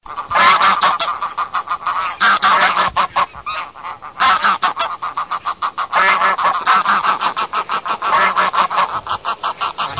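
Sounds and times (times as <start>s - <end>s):
group of wild geese calling: 0.0s - 9.9s.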